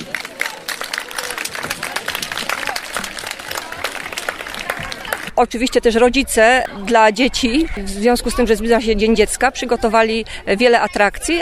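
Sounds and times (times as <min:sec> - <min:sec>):
audience applause: 0:00.0 - 0:05.4
murmur of voices: 0:00.0 - 0:11.4
speech: 0:05.4 - 0:11.4.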